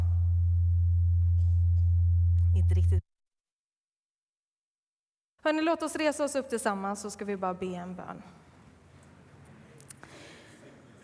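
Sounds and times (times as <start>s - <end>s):
loud low-pitched electrical hum from the sound system: 0.0s - 3.0s
speech: 2.6s - 3.1s, 5.5s - 8.4s.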